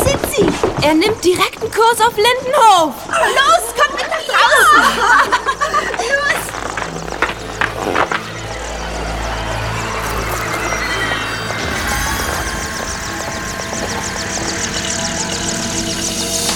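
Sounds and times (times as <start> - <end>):
speech: 0.4 - 5.7
laughter: 3.0 - 6.6
helicopter descending and landing: 8.1 - 16.5.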